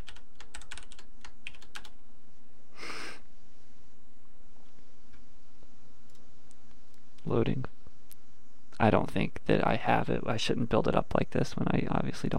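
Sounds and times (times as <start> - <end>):
typing on a computer keyboard: 0.0 - 2.0
low steady hum: 0.0 - 12.3
brief breathy puff: 2.8 - 3.2
speech: 7.3 - 7.8, 8.8 - 12.3.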